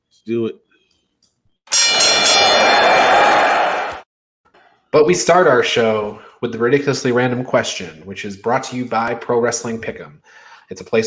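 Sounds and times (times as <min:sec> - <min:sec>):
speech: 0:00.2 - 0:00.6, 0:04.9 - 0:11.0
loud metallic bell ringing with a bright clang: 0:01.7 - 0:03.4.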